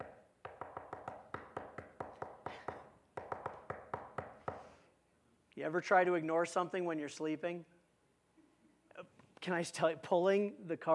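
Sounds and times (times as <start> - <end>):
rapid insistent knocking on a door: 0.4 - 4.6
speech: 5.6 - 7.7, 9.4 - 10.9.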